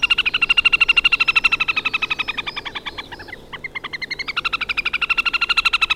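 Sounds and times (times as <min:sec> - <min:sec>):
trilling call of a small lake bird nesting in reed belts: 0:00.0 - 0:05.9.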